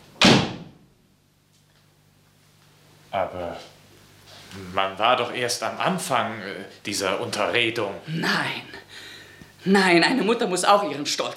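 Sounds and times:
door slamming shut: 0:00.2 - 0:00.9
speech: 0:03.1 - 0:03.8, 0:04.5 - 0:09.0, 0:09.6 - 0:11.3.

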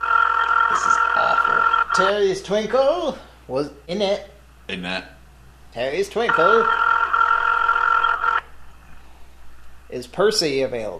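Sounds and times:
phone ringtone with a steady buzzy electronic tone: 0:00.0 - 0:02.2, 0:06.2 - 0:08.4
speech: 0:00.7 - 0:06.8, 0:09.9 - 0:10.9.

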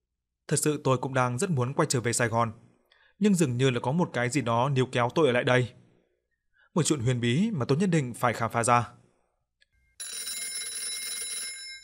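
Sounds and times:
speech: 0:00.5 - 0:05.8, 0:06.8 - 0:09.0
telephone ringing with a bright electronic ring: 0:09.8 - 0:11.8.

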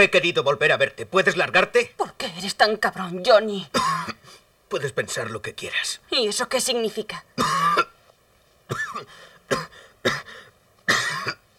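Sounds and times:
speech: 0:00.0 - 0:07.8, 0:08.7 - 0:11.0
person coughing with harsh hacking bursts: 0:03.7 - 0:04.2, 0:07.4 - 0:08.0, 0:08.7 - 0:11.4.

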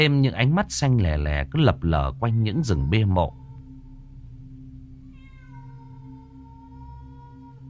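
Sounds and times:
speech: 0:00.0 - 0:03.4
steady low drone: 0:02.2 - 0:07.6
cat yowling eerily like a cat in heat among graves: 0:05.1 - 0:07.6.

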